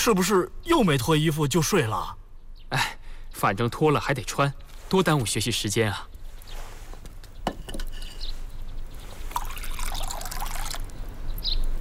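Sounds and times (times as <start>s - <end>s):
speech: 0.0s - 6.1s
thick porridge sloshing and trickling while ladled: 6.3s - 11.0s
thick porridge pouring: 9.0s - 11.0s.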